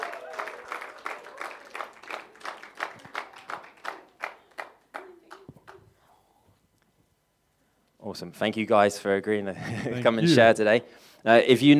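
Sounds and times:
room full of people clapping: 0.0 - 5.9
speech: 8.1 - 11.7
laughter: 9.5 - 10.6.

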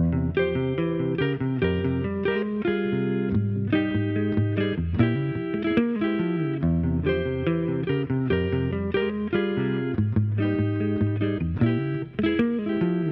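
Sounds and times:
distorted electric guitar playing a B-flat minor arpeggio with harmonized thirds: 0.0 - 13.0.

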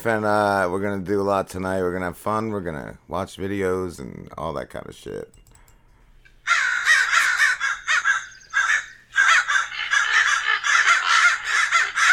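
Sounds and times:
speech: 0.0 - 5.4
crows cawing: 6.4 - 12.1.

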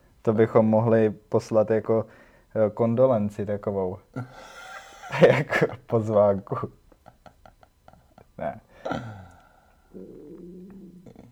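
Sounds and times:
speech: 0.2 - 6.8, 8.4 - 9.2
laughter: 4.2 - 9.3
stomach rumbling: 8.9 - 11.2.

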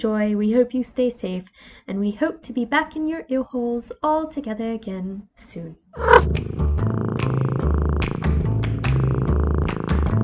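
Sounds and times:
speech: 0.0 - 6.6
cat purring: 6.0 - 10.2.

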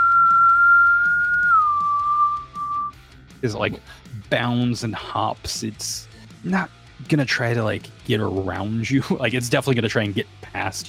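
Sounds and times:
high whistling flight tone: 0.0 - 3.0
speech: 3.4 - 10.8.

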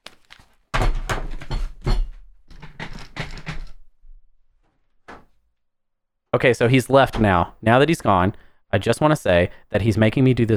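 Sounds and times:
speech: 6.3 - 10.5
door shutting with a soft thud: 7.0 - 7.5.

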